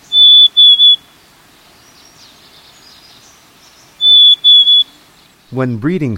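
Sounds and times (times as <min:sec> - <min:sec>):
black-capped chickadee soft whistled fee-bee song: 0:00.0 - 0:01.1, 0:03.9 - 0:05.0
speech: 0:05.5 - 0:06.1.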